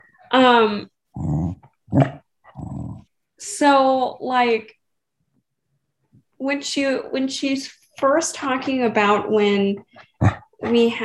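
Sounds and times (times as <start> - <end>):
speech: 0.3 - 1.3, 1.9 - 2.2, 3.4 - 4.8, 6.4 - 11.0
dog growling in low, rumbling bursts: 1.1 - 3.1, 9.8 - 11.0.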